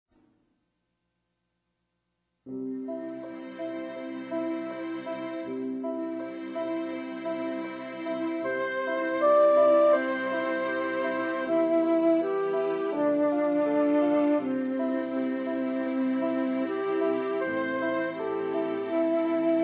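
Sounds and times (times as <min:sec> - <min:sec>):
piano: 0:02.5 - 0:19.6
strings: 0:02.5 - 0:19.6
flute: 0:08.5 - 0:19.6.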